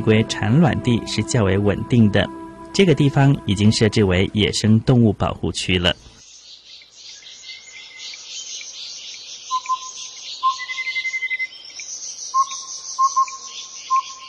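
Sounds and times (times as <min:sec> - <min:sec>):
speech: 0:00.0 - 0:06.0
bird whistling and trilling in woodland: 0:09.5 - 0:11.6, 0:12.3 - 0:14.2.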